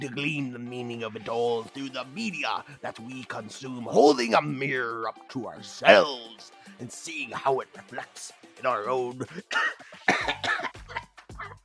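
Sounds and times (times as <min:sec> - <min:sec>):
speech: 0:00.0 - 0:10.6
person coughing with something caught in the throat: 0:09.2 - 0:11.1.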